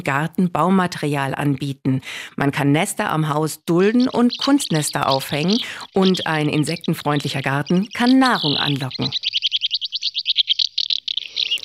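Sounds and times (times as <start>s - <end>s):
speech: 0.0s - 9.4s
house martin twittering: 3.7s - 11.6s.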